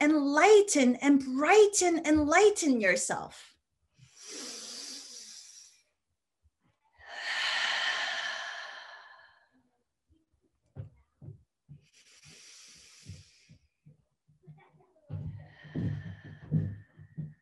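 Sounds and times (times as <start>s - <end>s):
speech: 0.4s - 3.5s
deep breaths during a guided relaxation exercise: 4.0s - 5.8s, 7.0s - 9.6s, 11.8s - 13.8s, 15.2s - 17.4s.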